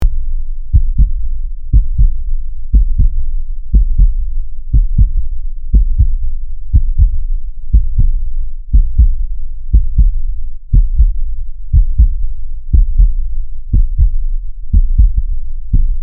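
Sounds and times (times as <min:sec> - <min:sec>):
heartbeat: 0:00.0 - 0:16.0.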